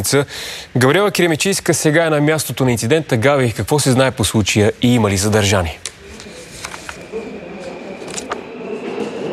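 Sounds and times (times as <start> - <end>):
speech: 0.0 - 5.9
indistinct voices murmuring: 5.9 - 9.3
metro train passing in underground station: 7.1 - 9.3.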